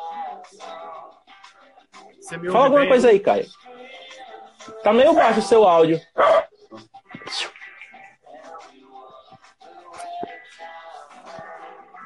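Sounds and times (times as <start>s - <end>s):
speech: 2.3s - 3.7s, 4.8s - 7.4s
several dogs barking: 6.2s - 6.6s.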